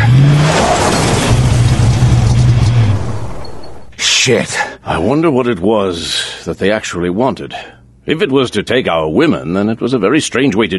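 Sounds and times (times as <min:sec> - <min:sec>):
car engine revving and accelerating: 0:00.0 - 0:03.8
rushing noise: 0:00.0 - 0:04.2
speech: 0:04.2 - 0:10.7.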